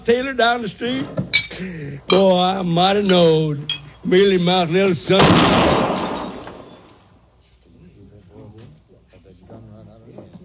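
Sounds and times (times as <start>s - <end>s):
speech: 0.1s - 5.9s
gunshot shooting a glass out of a hand: 5.2s - 6.9s
glass shattering: 5.2s - 7.1s.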